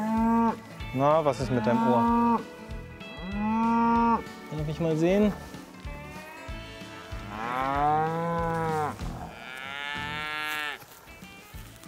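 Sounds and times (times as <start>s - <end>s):
cow mooing: 0.0s - 0.6s, 1.4s - 2.4s, 3.2s - 4.3s, 6.0s - 10.8s
speech: 1.0s - 2.6s, 4.5s - 5.5s.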